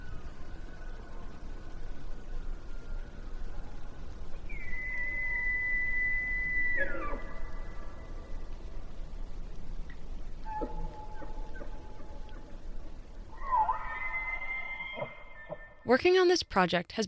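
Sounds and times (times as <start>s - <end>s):
steady outdoor hiss: 0.0s - 17.0s
elk bugling over a lake: 4.5s - 8.7s, 10.3s - 15.9s
speech: 15.9s - 17.0s.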